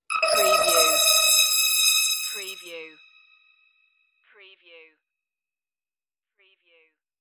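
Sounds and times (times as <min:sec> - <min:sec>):
crystal interface beam: 0:00.0 - 0:03.3.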